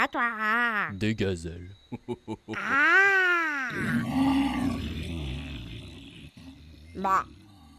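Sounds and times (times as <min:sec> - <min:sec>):
speech: 0:00.0 - 0:04.6, 0:07.0 - 0:07.4
human voice imitating a tiger's roar and growl: 0:02.6 - 0:07.7.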